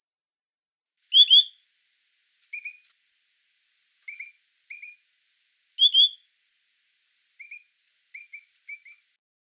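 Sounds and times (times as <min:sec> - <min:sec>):
pine grosbeak calling with whistled notes: 0:01.1 - 0:01.7, 0:02.4 - 0:03.0, 0:04.0 - 0:05.1, 0:05.7 - 0:09.1.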